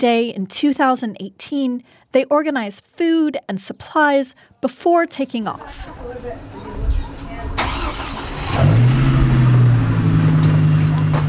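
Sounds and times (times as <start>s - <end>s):
speech: 0.0s - 7.2s
faint voices: 5.4s - 8.1s
car engine cranking and idling in rural Redding California: 7.2s - 11.2s.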